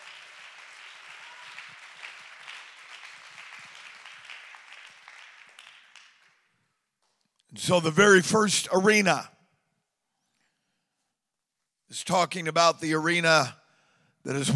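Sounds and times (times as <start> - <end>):
audience clapping hands: 0.0 - 7.2
speech: 7.5 - 9.3, 12.0 - 13.6, 14.2 - 14.5.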